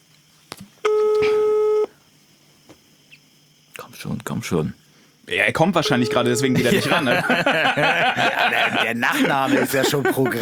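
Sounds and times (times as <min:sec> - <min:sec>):
telephone ringback tone on an outgoing call: 0:00.9 - 0:01.9
speech: 0:04.0 - 0:10.4
laughter: 0:06.5 - 0:10.4.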